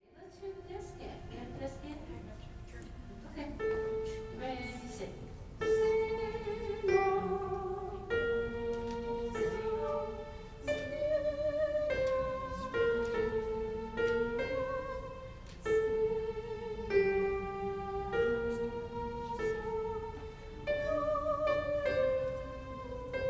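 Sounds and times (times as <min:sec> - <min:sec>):
refrain descant melody: 0:00.0 - 0:23.2.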